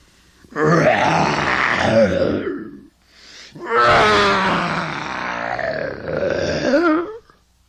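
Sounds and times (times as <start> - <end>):
person imitating a lion's roar: 0.5 - 2.9, 3.6 - 7.3.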